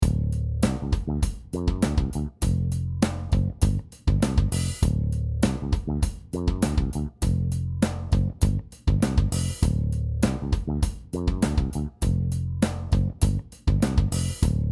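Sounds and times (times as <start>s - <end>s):
bass: 0.0s - 14.7s.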